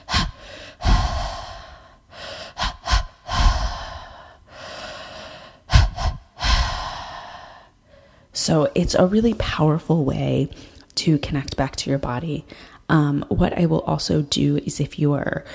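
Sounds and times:
deep three-part breathing through the mouth: 0.0s - 8.3s
speech: 8.4s - 15.5s.

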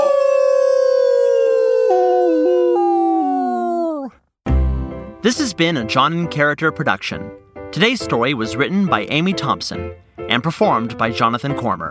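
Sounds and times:
person howling like a wolf: 0.0s - 4.2s
speech: 5.2s - 11.9s.

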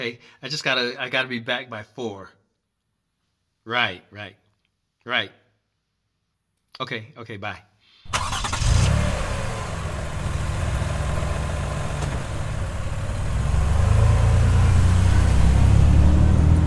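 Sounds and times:
speech: 0.0s - 2.4s, 3.6s - 4.4s, 5.0s - 5.4s, 6.8s - 8.4s
car engine droning while driving: 8.1s - 16.6s.

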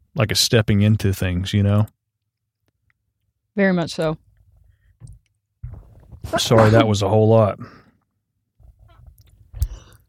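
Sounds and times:
speech: 0.2s - 2.0s, 3.6s - 4.2s, 6.2s - 7.8s
sneeze: 6.2s - 6.9s
breathing: 9.5s - 10.0s.

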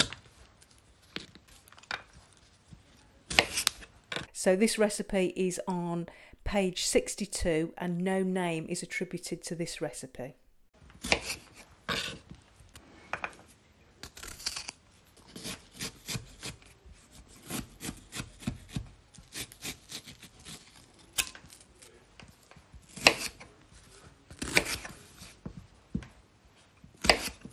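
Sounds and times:
knife cutting apricots and prising out their stones for a preserve: 3.3s - 4.3s, 14.0s - 16.7s, 17.3s - 21.6s, 22.9s - 23.5s, 24.3s - 25.4s, 27.0s - 27.5s
speech: 4.4s - 10.4s.

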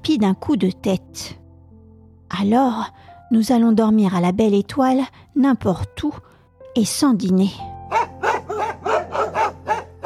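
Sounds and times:
speech: 0.0s - 1.4s, 2.3s - 8.1s
several dogs growling together: 7.9s - 10.0s.

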